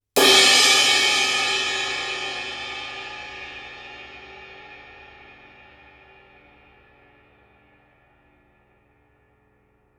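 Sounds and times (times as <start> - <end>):
21 inch ride crash cymbal with strong cutting bell: 0.2 - 4.8.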